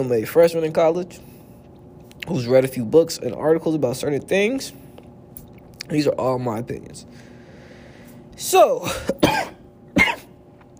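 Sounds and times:
speech: 0.0s - 1.4s, 2.3s - 4.8s, 5.9s - 7.3s, 8.4s - 9.5s
person coughing: 8.8s - 10.4s.

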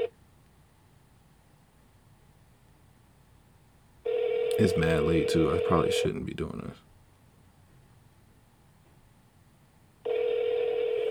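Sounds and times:
low hiss: 0.0s - 11.0s
telephone ringback tone on an outgoing call: 4.1s - 6.2s, 10.1s - 11.0s
speech: 4.6s - 6.9s.

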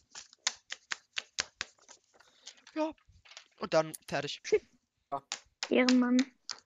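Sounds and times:
light papery rustling: 0.0s - 3.8s
speech: 2.8s - 3.0s, 3.6s - 6.4s.

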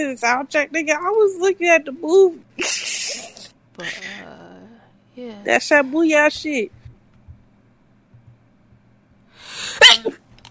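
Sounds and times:
speech: 0.0s - 2.8s, 3.8s - 4.2s, 5.2s - 6.8s
person sneezing: 9.6s - 10.2s.

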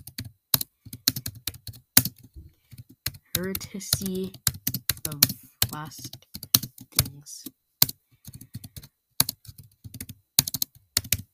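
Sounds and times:
typing on a computer keyboard: 0.0s - 7.2s, 7.8s - 11.3s
speech: 3.4s - 4.4s, 5.1s - 6.2s.

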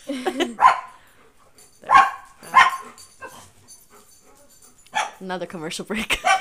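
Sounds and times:
speech: 0.0s - 0.4s, 5.2s - 6.3s
dogs barking: 0.4s - 5.2s, 6.1s - 6.3s
dog yipping: 0.6s - 1.0s, 1.8s - 5.2s, 6.2s - 6.3s.

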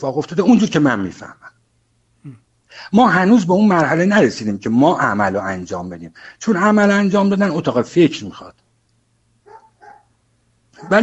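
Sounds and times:
speech: 0.0s - 1.6s, 2.2s - 8.6s, 10.8s - 11.0s
dog barking: 9.5s - 10.1s, 10.8s - 11.0s.

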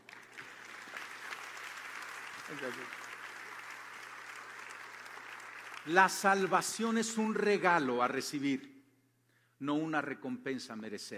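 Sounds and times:
audience applause: 0.0s - 6.8s
speech: 2.5s - 3.1s, 5.8s - 8.7s, 9.6s - 11.1s.

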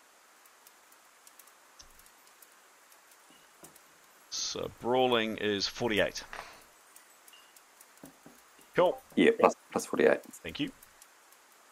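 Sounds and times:
steady rain hissing: 0.0s - 11.7s
speech: 4.5s - 6.5s, 8.8s - 10.8s
brief drips and taps of rain: 7.2s - 9.3s.

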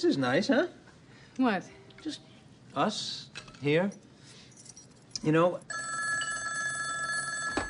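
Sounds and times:
speech: 0.0s - 0.8s, 1.4s - 4.0s, 5.2s - 5.8s
telephone bell ringing: 5.7s - 7.6s.

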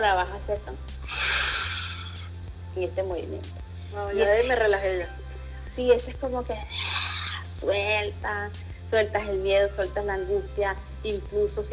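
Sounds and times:
speech: 0.0s - 1.1s, 2.8s - 5.2s, 5.8s - 6.8s, 7.6s - 11.7s
forceful breathy lion's breath yoga exhale through an open mouth: 1.1s - 2.1s.

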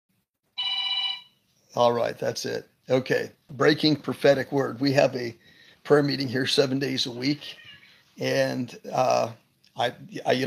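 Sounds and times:
telephone bell ringing with a steady electronic trill: 0.6s - 1.4s
speech: 1.8s - 7.6s, 8.2s - 10.4s.

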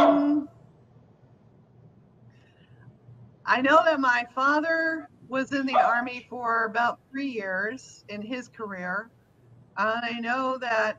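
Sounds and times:
dog barking: 0.0s - 0.5s, 5.7s - 6.2s
quiet noise: 0.0s - 10.9s
speech: 3.5s - 9.2s, 9.8s - 10.9s.

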